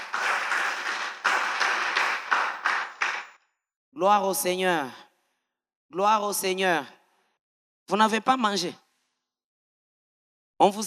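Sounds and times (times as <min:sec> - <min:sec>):
church congregation applauding and cheering during a service: 0:00.0 - 0:03.4
speech: 0:04.0 - 0:05.0, 0:05.9 - 0:07.0, 0:07.9 - 0:08.8, 0:10.6 - 0:10.8.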